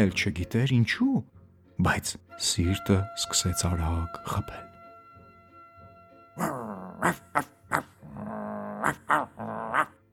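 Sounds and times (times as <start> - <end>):
speech: 0.0 - 4.7, 6.4 - 7.9, 8.8 - 9.5
human voice imitating a hunting dog's growl in a spoken children's story: 6.4 - 9.9.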